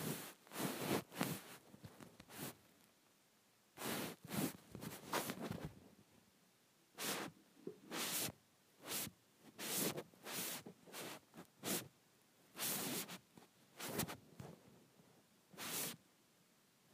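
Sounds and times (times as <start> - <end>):
phone rubbed against a blanket: 0.0 - 1.6, 2.3 - 2.6, 3.8 - 5.7, 7.0 - 11.9, 12.6 - 13.2, 13.8 - 14.2, 15.6 - 16.0.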